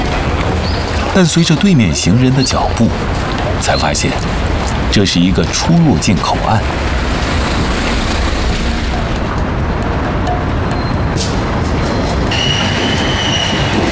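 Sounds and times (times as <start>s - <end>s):
train roaring over a bridge: 0.0s - 13.8s
speech: 1.2s - 7.2s
thin metallic squeal: 11.9s - 13.8s.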